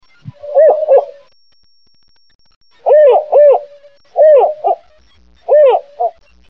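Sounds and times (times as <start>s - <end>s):
spotted owl hooting in Northwest California: 0.3s - 1.3s, 2.8s - 4.8s, 5.5s - 6.2s.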